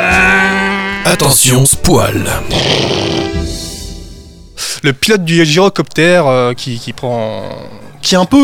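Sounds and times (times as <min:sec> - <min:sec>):
speech: 0:01.0 - 0:03.2, 0:04.8 - 0:08.4
person growling imitating a roaring motorcycle engine: 0:02.5 - 0:03.4.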